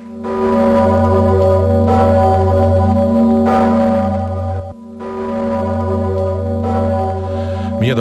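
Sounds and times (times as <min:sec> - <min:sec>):
large 500-year-old church bell tolling in Kraków: 0:00.0 - 0:07.9.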